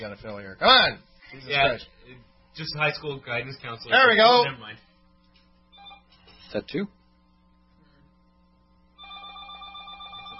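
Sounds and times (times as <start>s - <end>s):
speech: 0.0s - 4.9s, 6.5s - 7.0s
quiet hum: 0.0s - 10.3s
telephone ringing with a bright steady bell tone: 9.0s - 10.3s.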